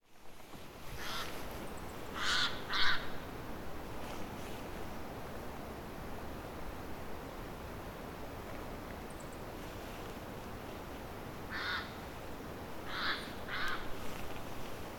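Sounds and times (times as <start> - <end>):
steady hiss of background noise: 0.0 - 14.9
bird giving harsh cawing calls: 1.0 - 1.3, 2.2 - 3.2, 11.5 - 12.0, 12.8 - 13.9.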